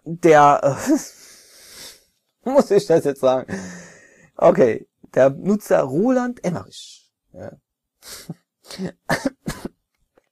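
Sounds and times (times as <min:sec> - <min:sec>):
speech: 0:00.1 - 0:01.2, 0:02.4 - 0:03.8, 0:04.4 - 0:09.6
person coughing in short rough bursts: 0:08.7 - 0:09.8.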